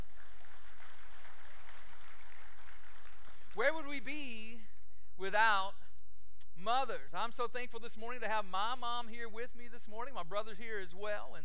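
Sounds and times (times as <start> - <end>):
audience applause during a sermon: 0.0 - 3.8
speech: 3.6 - 5.8, 6.6 - 11.4.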